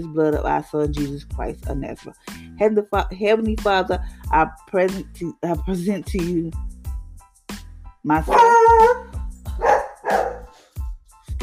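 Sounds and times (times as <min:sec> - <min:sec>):
speech: 0:00.0 - 0:06.7, 0:08.0 - 0:09.0
dog barking in loud bursts: 0:08.3 - 0:10.6.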